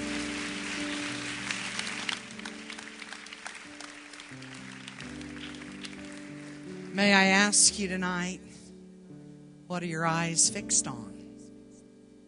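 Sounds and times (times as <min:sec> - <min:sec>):
audience clapping hands in praise: 0:00.0 - 0:07.6
sustained organ or keyboard chords: 0:00.0 - 0:07.6
speech: 0:07.0 - 0:08.5, 0:09.7 - 0:11.2.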